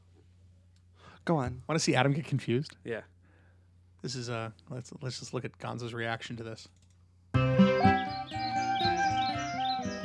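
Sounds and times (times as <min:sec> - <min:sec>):
speech: 0:01.2 - 0:03.1, 0:04.0 - 0:06.8
birds chirping and tweeting in a played recording: 0:07.5 - 0:10.0.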